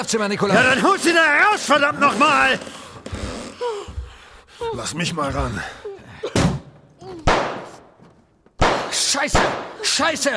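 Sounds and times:
speech: 0.0s - 2.8s, 4.7s - 6.5s, 9.1s - 10.3s
gunshots fired through a bedroom door by a woman: 6.4s - 7.9s, 8.6s - 10.0s.

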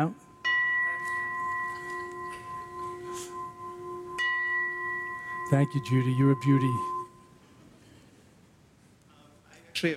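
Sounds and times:
speech: 0.0s - 0.2s, 5.5s - 7.0s, 9.8s - 9.9s
gong ringing with sustained metallic tone: 0.0s - 7.4s.

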